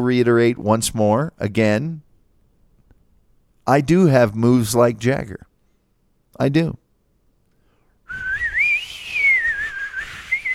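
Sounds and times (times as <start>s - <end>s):
speech: 0.0s - 2.0s, 3.7s - 5.5s, 6.4s - 6.8s
person whistling a short song melody: 8.1s - 10.5s.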